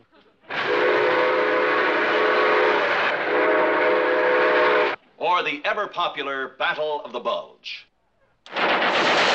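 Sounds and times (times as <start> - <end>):
loud train horn blaring: 0.5 - 5.0
roaring rush of rail noise: 0.5 - 5.0
speech: 5.4 - 9.2.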